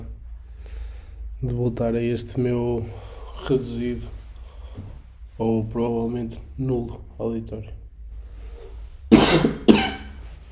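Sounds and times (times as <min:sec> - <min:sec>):
speech: 0:01.4 - 0:04.2, 0:05.4 - 0:07.8
harsh coughs: 0:09.1 - 0:10.2.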